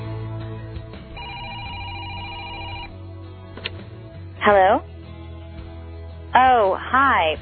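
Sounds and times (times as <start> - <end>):
telephone ringing with electronic warbling tone: 1.2 - 2.9
speech: 4.5 - 4.9, 6.9 - 7.4.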